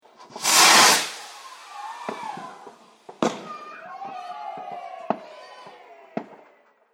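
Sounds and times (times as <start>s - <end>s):
background firework bangs: 0.0s - 6.7s
firework rocket whoosh: 0.1s - 3.8s
crowd cheering: 0.4s - 6.9s.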